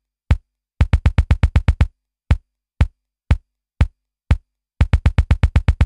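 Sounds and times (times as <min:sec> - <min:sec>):
DMX drum machine pattern: 0:00.3 - 0:02.4, 0:04.3 - 0:05.8.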